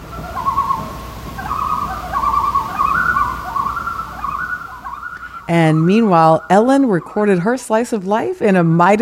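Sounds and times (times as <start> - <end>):
loons calling across open water: 0.0 - 8.9
soft low hum: 0.0 - 8.9
speech: 5.5 - 8.9.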